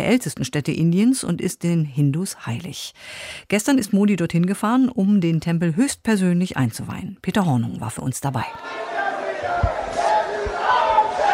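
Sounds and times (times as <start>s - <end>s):
speech: 0.0s - 8.9s
large crowd singing and cheering together: 8.6s - 11.3s.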